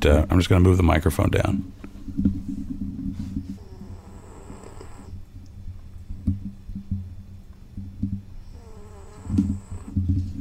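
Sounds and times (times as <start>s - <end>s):
speech: 0.0s - 2.5s
fat little lap dog snoring: 3.4s - 5.2s, 8.4s - 10.4s.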